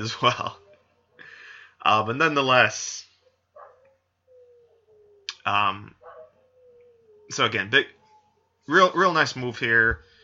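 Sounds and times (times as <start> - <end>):
speech: 0.0 - 0.6, 1.8 - 3.1, 5.5 - 6.0, 7.3 - 8.0, 8.7 - 10.1
dogs howling: 0.0 - 10.2
dog yelping bark: 3.2 - 5.0, 5.9 - 6.8.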